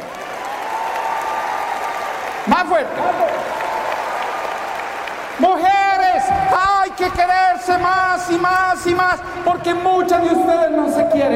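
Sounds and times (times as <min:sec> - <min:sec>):
large audience of women applauding: 0:00.0 - 0:10.3
speech: 0:02.4 - 0:03.5, 0:05.4 - 0:05.8, 0:06.4 - 0:11.3
man calling out: 0:05.4 - 0:11.3.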